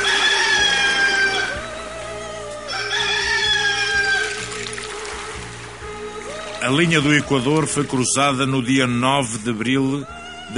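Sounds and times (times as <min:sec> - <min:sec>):
roosters crowing: 0:00.0 - 0:02.1, 0:02.7 - 0:04.7
speech: 0:06.7 - 0:10.5.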